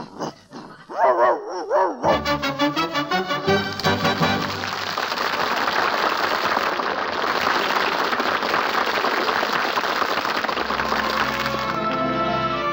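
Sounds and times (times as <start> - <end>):
dog yelping with whiny cries: 0.2 - 2.1
audience applauding: 2.8 - 12.6.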